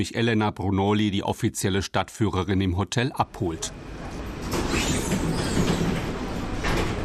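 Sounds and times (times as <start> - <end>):
speech: 0.0 - 4.0
historic 1930s tram clattering along rails: 3.9 - 7.0.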